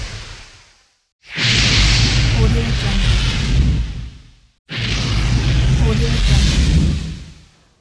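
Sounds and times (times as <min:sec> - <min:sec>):
flames burning: 0:01.5 - 0:07.6.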